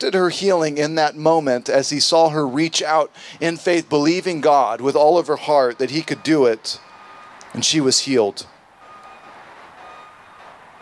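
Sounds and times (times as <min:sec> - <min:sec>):
speech: 0:00.0 - 0:06.9, 0:07.5 - 0:08.5
steady noise: 0:00.0 - 0:10.7
small electronic alarm beeping: 0:06.2 - 0:07.4, 0:08.8 - 0:10.7.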